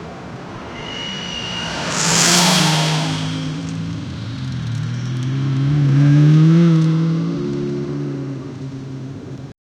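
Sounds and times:
continuous traffic noise while stuck in traffic: 0:00.0 - 0:09.5.

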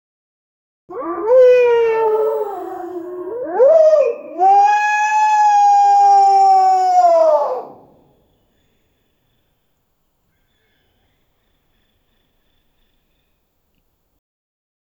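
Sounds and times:
giant mythical deer scream: 0:00.9 - 0:08.0.

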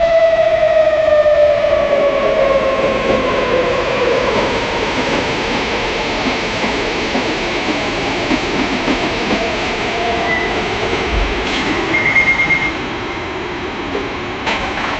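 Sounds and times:
subway train arriving: 0:00.0 - 0:14.9.

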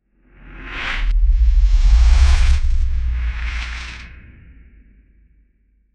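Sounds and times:
gentle ethereal cinematic transition: 0:01.0 - 0:04.6.

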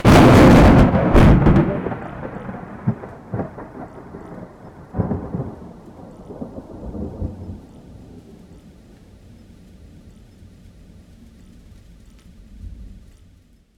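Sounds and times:
thunder crash: 0:00.0 - 0:08.4.

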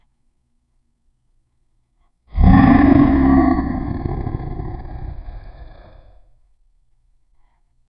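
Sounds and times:
lion roar: 0:02.4 - 0:06.2.

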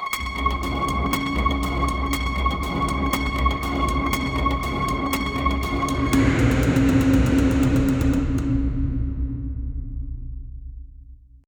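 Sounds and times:
terrified horror glitch effect: 0:00.1 - 0:11.3.

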